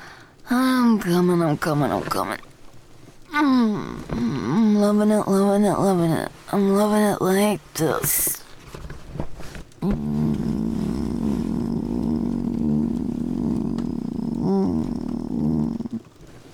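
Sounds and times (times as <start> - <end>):
speech: 0.5 - 2.5, 3.4 - 8.4, 9.8 - 10.1
person growling with a deep rumbling gritty pulse: 3.4 - 4.7, 9.8 - 16.2.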